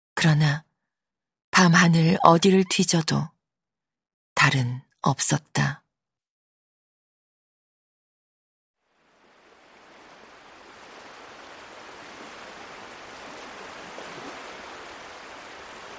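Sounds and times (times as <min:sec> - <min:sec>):
speech: 0:00.2 - 0:00.7, 0:01.6 - 0:03.3, 0:04.4 - 0:05.8
rough ocean surf roaring: 0:08.9 - 0:15.9
wind hissing: 0:08.9 - 0:15.9.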